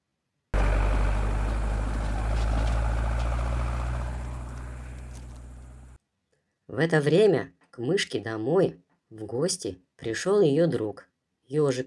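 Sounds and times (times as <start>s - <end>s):
car engine starting: 0.6s - 6.0s
speech: 6.7s - 11.8s.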